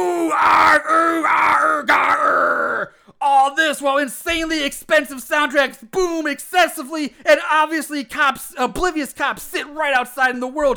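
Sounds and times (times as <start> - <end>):
voices howling and wailing in imitation of a burning monster: 0.0 - 2.9
speech: 2.8 - 10.7.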